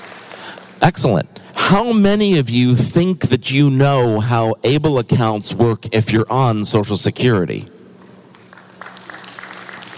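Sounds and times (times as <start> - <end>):
scattered audience applause: 0.0 - 0.7, 8.3 - 9.9
speech: 0.8 - 7.8.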